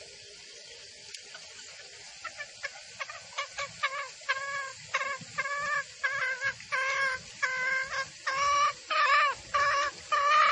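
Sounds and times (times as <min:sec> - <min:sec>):
background hiss: 0:00.0 - 0:10.5
female junglefowl clucking: 0:02.2 - 0:10.5.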